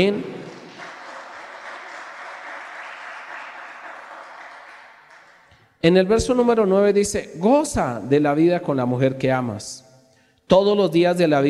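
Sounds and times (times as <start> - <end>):
speech: 0.0 - 0.4, 5.8 - 9.8, 10.5 - 11.4
audience applauding: 0.0 - 5.6.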